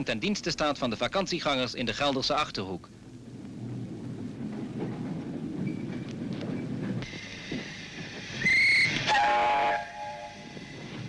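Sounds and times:
speech: 0:00.0 - 0:03.0
historic steam tram rumbling and clanking along: 0:00.0 - 0:11.0
steam tram shrill whistle blast: 0:08.4 - 0:10.2.

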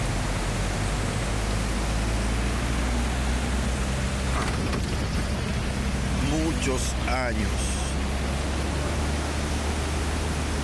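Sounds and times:
powerful swollen river rushing: 0:00.0 - 0:10.6
speech: 0:06.6 - 0:07.7.

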